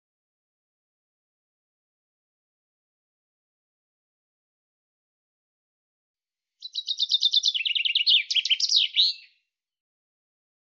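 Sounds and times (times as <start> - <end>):
common chaffinch singing: 6.6 - 9.4.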